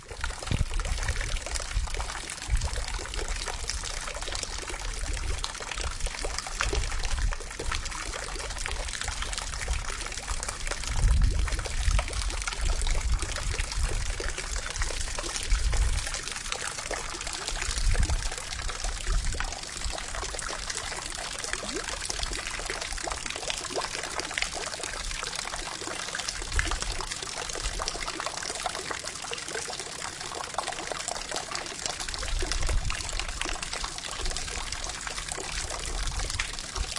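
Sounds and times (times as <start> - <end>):
water gushing from a burst water pipe in winter: 0.0 - 36.9.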